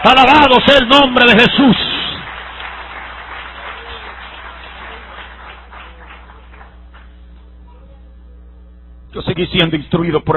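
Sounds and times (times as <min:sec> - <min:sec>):
speech: 0:00.0 - 0:01.9, 0:09.4 - 0:10.3
evangelical congregation applauding in praise: 0:00.0 - 0:07.2.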